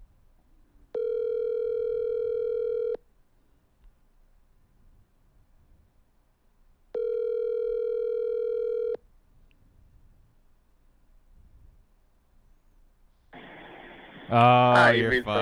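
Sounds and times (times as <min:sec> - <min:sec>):
electronic phone ring tones on the line: 0:00.9 - 0:03.0, 0:06.9 - 0:09.0
quiet hiss: 0:13.4 - 0:14.4
sudden burst of noise: 0:13.4 - 0:15.2
speech: 0:14.3 - 0:15.4.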